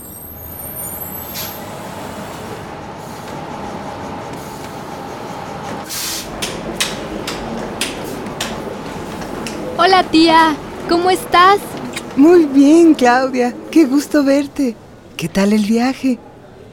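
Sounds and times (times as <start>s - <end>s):
large bus engine rumbling: 0.0s - 16.7s
bus air-brake hiss: 1.2s - 2.4s, 5.8s - 6.4s
short pneumatic hisses: 5.9s - 6.3s, 11.8s - 12.1s
speech: 10.0s - 16.2s.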